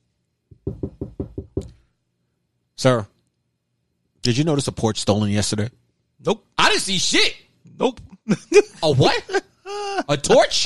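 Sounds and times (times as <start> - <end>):
firm knocking on a door: 0.5 - 1.8
speech: 0.6 - 1.7, 2.8 - 3.1, 4.2 - 10.6
laughter: 8.2 - 10.6.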